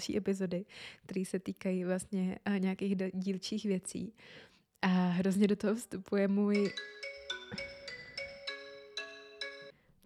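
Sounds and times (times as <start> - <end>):
speech: 0.0 - 7.7
melodic electronic phone ringtone: 6.6 - 9.8.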